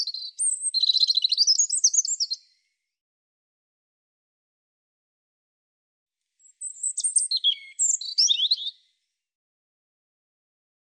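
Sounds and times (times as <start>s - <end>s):
European robin singing: 0.0s - 2.6s, 6.4s - 8.9s.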